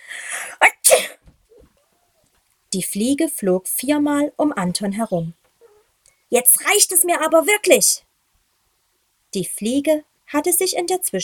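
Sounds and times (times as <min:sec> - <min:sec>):
person sneezing: 0:00.7 - 0:01.2
speech: 0:02.7 - 0:05.4, 0:06.3 - 0:08.1, 0:09.3 - 0:11.2.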